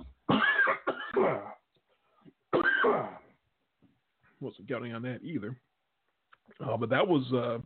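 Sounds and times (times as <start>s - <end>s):
person coughing harshly: 0.3s - 1.6s, 2.5s - 3.3s
speech: 4.4s - 5.7s, 6.6s - 7.6s.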